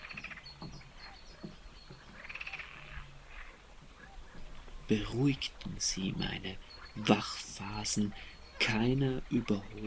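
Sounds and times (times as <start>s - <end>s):
chorus of frogs croaking and trilling at night: 0.0s - 9.8s
speech: 4.9s - 9.8s.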